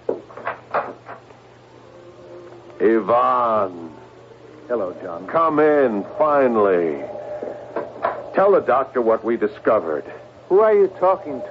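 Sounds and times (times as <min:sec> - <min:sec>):
low steady hum: 0:00.0 - 0:11.4
speech: 0:02.8 - 0:03.8, 0:04.7 - 0:07.1, 0:08.4 - 0:11.4
door opening with clunks and rattles: 0:07.2 - 0:08.4.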